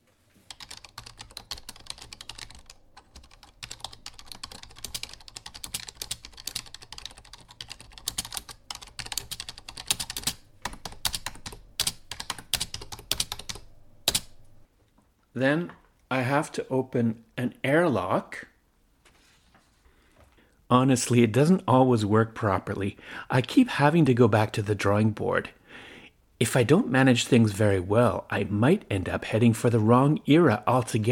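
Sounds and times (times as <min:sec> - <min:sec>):
typing on a wireless computer keyboard: 0:00.5 - 0:14.4
speech: 0:15.4 - 0:18.5, 0:20.7 - 0:25.6, 0:26.4 - 0:31.1.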